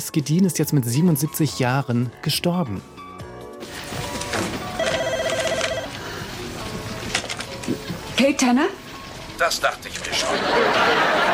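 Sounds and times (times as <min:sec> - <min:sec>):
speech: 0:00.0 - 0:03.0, 0:08.3 - 0:08.8, 0:09.4 - 0:11.2
telephone ringing: 0:04.6 - 0:06.0
laughter: 0:10.0 - 0:11.3.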